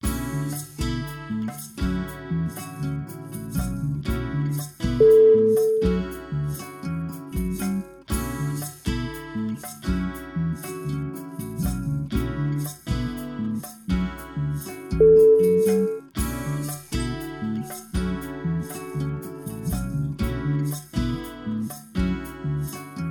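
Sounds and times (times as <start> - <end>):
guitar music: 0.0 - 23.0.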